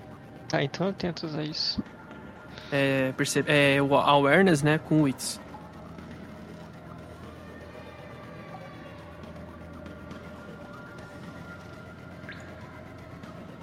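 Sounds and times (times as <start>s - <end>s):
faint tonal hums: 0.0s - 13.6s
speech: 0.5s - 2.0s, 2.6s - 5.4s
water dripping in a dark tunnel: 12.2s - 12.6s.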